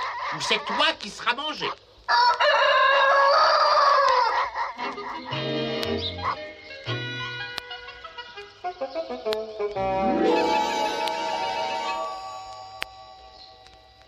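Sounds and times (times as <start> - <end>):
speech: 0.3 - 2.8, 8.7 - 11.0
rooster crowing: 2.1 - 5.5
bright tuneful music with bouncy plucked and sliding notes: 5.3 - 12.8.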